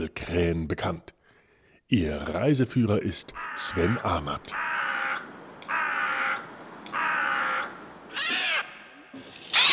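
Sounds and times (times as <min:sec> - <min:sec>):
speech: 0:00.0 - 0:01.2, 0:01.9 - 0:04.9
common raven croaking: 0:03.3 - 0:09.7
higher rasping common raven call: 0:03.4 - 0:09.7.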